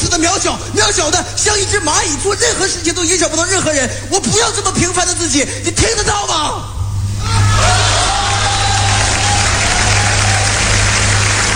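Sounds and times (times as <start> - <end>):
speech: 0.2 - 7.9
faint low rumble: 6.6 - 11.5
steady downpour of rain: 8.8 - 11.5.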